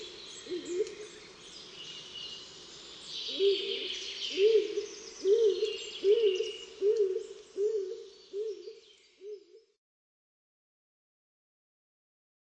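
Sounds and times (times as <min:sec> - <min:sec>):
stock dove cooing: 0:00.0 - 0:01.0, 0:03.3 - 0:09.7
other birds twittering softly: 0:00.0 - 0:09.3.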